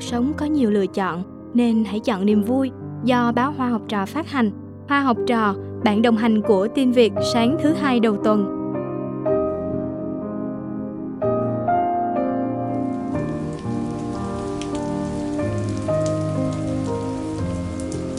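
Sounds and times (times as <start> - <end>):
soft melodic music: 0.0 - 18.1
speech: 0.1 - 8.6
early-season rain falling on surfaces: 12.6 - 18.1.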